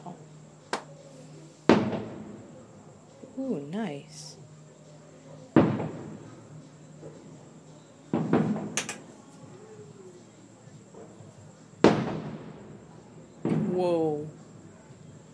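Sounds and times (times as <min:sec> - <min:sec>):
fireworks bursting outside: 0:01.7 - 0:02.5, 0:05.6 - 0:06.3, 0:08.1 - 0:09.0, 0:11.8 - 0:13.8
speech: 0:03.4 - 0:04.4.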